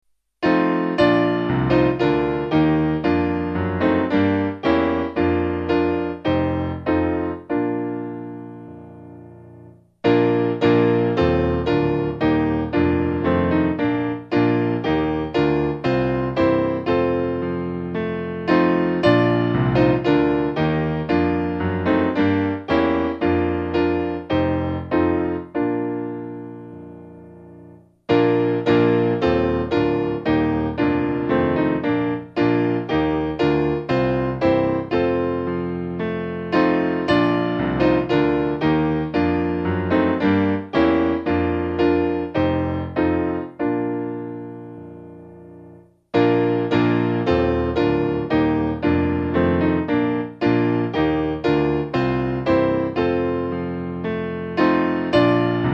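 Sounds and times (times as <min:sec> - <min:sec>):
piano: 0:00.0 - 0:55.7.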